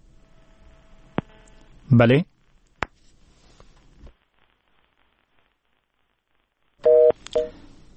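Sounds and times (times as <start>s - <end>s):
faint static on a telephone line: 0.0s - 7.9s
speech: 1.9s - 2.3s
short loud bursts of stacked electronic telephone tones: 6.8s - 7.6s.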